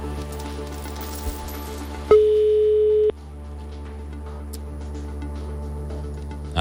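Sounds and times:
telephone ringback tone: 2.1 - 3.1.

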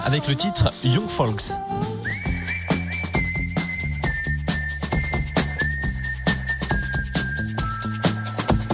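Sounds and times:
speech: 0.1 - 1.9
pop backing of punchy drums and bass: 0.7 - 8.7
bright whistled melody: 1.7 - 8.7.

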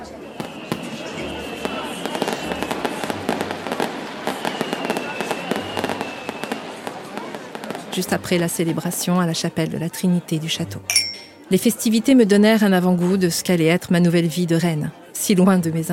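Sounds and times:
fireworks crackling and popping: 0.0 - 8.4
faint voices murmuring: 0.0 - 15.9
speech: 8.0 - 15.9.

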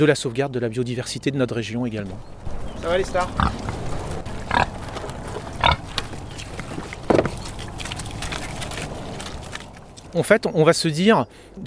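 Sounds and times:
speech: 0.0 - 3.7, 10.1 - 11.6
outdoor noise: 0.0 - 11.6
free-range Blanc de l'Ouest pigs grunting and snorting: 2.8 - 10.2.

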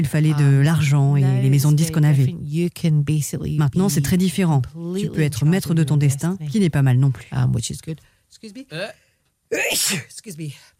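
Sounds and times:
speech: 0.0 - 10.7
person sneezing loudly: 9.5 - 10.1.

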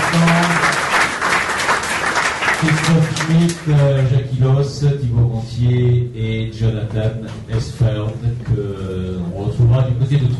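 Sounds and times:
audience applauding: 0.0 - 4.2
speech: 2.6 - 10.3.

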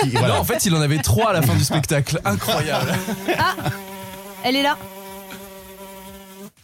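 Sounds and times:
speech: 0.0 - 4.9
laughter: 0.0 - 5.5
housefly buzzing: 2.4 - 6.6.

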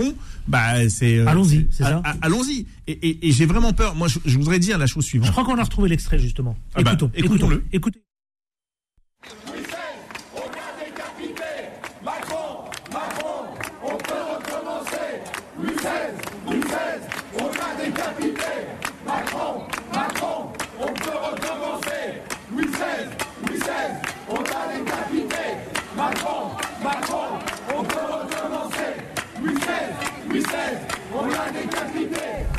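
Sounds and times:
speech: 0.0 - 8.1, 9.2 - 9.5
large crowd chanting and shouting at a protest: 9.2 - 32.5.

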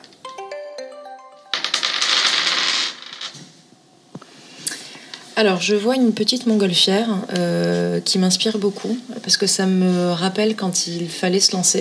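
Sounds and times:
short bright chiming jingle: 0.2 - 1.8
dice being shaken and rolled in a dice-throwing game: 1.6 - 3.3
speech: 5.4 - 11.7.

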